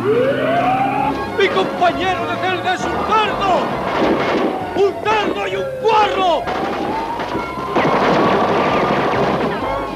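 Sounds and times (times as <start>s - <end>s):
speech: 0.0s - 0.4s, 1.4s - 7.2s
rapid gunfire in a dubbed film scene: 6.4s - 9.8s.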